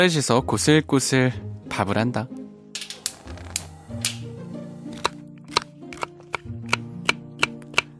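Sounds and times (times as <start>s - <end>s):
speech: 0.0s - 2.4s
knife chopping ingredients on a cutting board at home: 5.0s - 7.9s.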